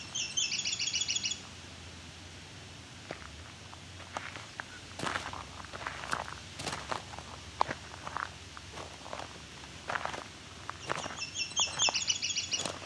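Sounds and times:
warbler song similar to myrtle warbler: 0.0s - 1.5s, 10.8s - 12.8s
footsteps crunching and rustling: 3.0s - 12.8s.

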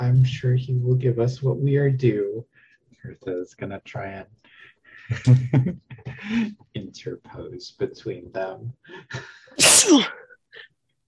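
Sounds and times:
speech: 0.2s - 10.7s
laughter: 5.0s - 6.6s
person sneezing: 9.6s - 10.2s.

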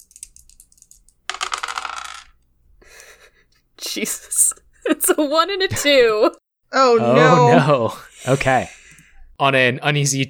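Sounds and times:
two dice rolling across a hard surface: 0.0s - 2.4s
speech: 3.9s - 8.8s, 9.4s - 10.2s.

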